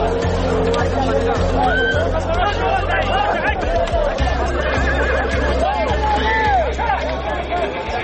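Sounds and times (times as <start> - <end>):
Lakai horses neighing: 0.0 - 7.1
crowd chatter: 0.0 - 8.0
laughter: 0.0 - 8.0.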